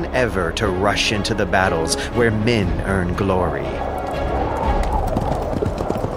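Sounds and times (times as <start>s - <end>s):
speech: 0.2s - 4.3s
horse hooves clip-clopping: 3.9s - 6.1s.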